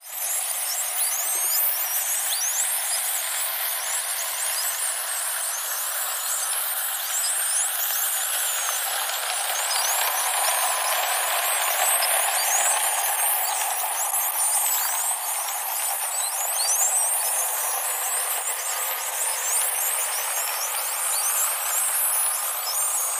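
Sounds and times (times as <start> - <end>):
spotted dolphin whistle: 0.0 - 23.1.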